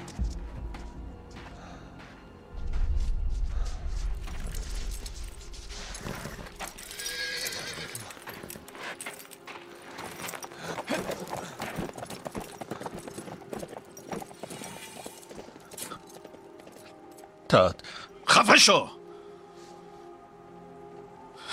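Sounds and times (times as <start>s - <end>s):
horse hooves clip-clopping as a rider leaves on horseback: 0.0s - 17.3s
horse neighing: 6.8s - 8.2s
speech: 17.6s - 19.0s.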